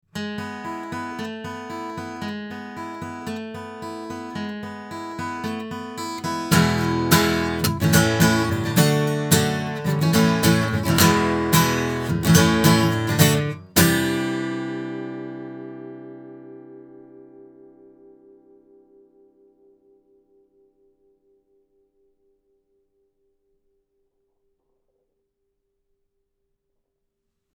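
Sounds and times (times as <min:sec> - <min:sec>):
guitar recorded with a cardioid condenser microphone: 0:00.2 - 0:20.4.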